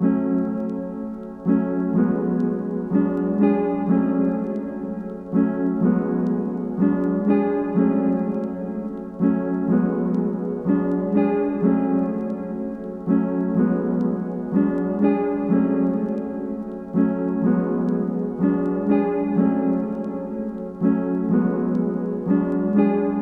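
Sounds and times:
wet piano melody loop in F sharp minor: 0:00.0 - 0:23.2.

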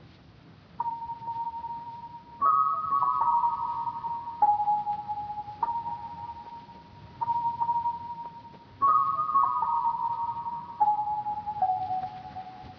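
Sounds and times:
lofi pluck melody loop in G sharp minor: 0:00.8 - 0:12.7.

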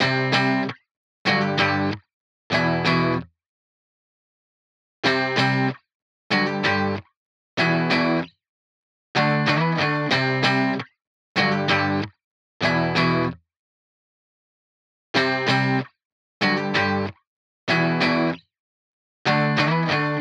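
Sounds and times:
95 BPM guitar loop in G major: 0:00.0 - 0:00.7, 0:01.3 - 0:03.2, 0:05.0 - 0:07.0, 0:07.6 - 0:08.3, 0:09.2 - 0:10.8, 0:11.4 - 0:13.4, 0:15.2 - 0:15.8, 0:16.4 - 0:17.1, 0:17.7 - 0:18.4, 0:19.3 - 0:20.1.

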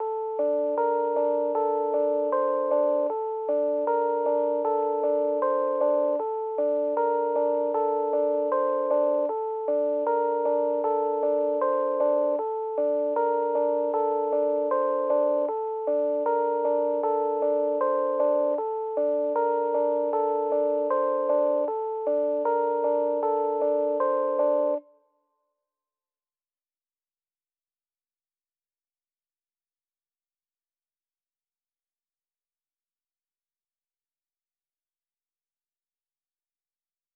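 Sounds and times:
Rhodes electric piano in G minor: 0:00.0 - 0:24.8.

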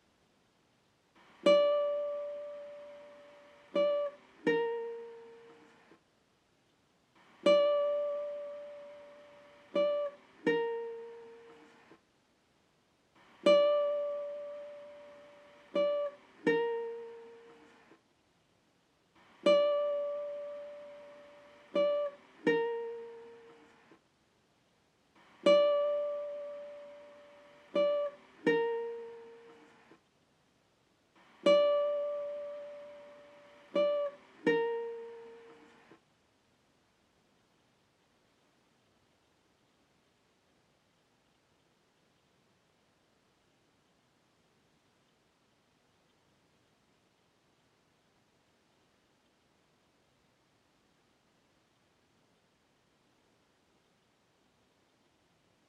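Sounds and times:
guitar loop in G minor at 80 BPM: 0:01.2 - 0:05.8, 0:07.2 - 0:11.9, 0:13.2 - 0:17.8, 0:19.2 - 0:23.9, 0:25.2 - 0:29.9, 0:31.2 - 0:36.0.

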